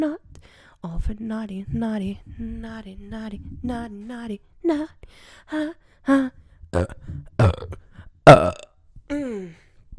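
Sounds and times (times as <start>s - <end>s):
speech: 0.0s - 9.6s
deep voiced burps: 6.8s - 8.8s.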